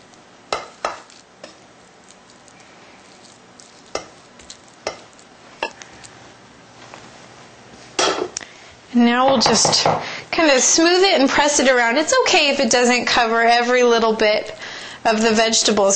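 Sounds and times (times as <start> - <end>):
millet grains scattered over vegetables in a pan: 0.0 - 6.2
speech: 9.0 - 15.9.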